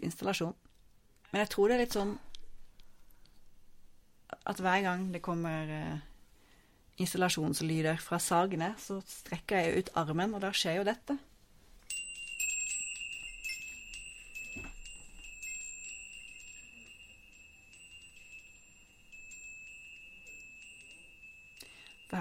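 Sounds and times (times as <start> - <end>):
speech: 0.1 - 0.7, 1.3 - 2.3, 4.3 - 6.1, 7.0 - 11.3
small bells hanging from an office ceiling jingling when touched: 1.3 - 3.9, 11.8 - 22.1
light taps and clinks: 11.8 - 22.1.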